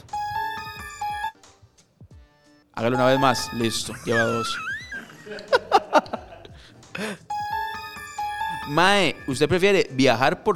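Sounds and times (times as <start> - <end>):
faint electronic blips and clicks: 0.0 - 1.3, 7.3 - 8.9
short bright electronic jingle with chiming notes: 0.0 - 1.4, 2.9 - 4.6, 7.3 - 9.4
speech: 2.8 - 4.7, 7.0 - 7.3, 8.7 - 10.5
laughter: 3.4 - 7.2.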